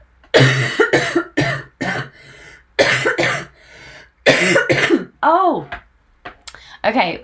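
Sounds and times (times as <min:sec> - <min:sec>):
person coughing harshly: 0:00.3 - 0:02.2, 0:02.8 - 0:03.6, 0:04.2 - 0:05.1
faint wheezy breath: 0:02.1 - 0:02.7, 0:03.5 - 0:04.2
speech: 0:06.9 - 0:07.2.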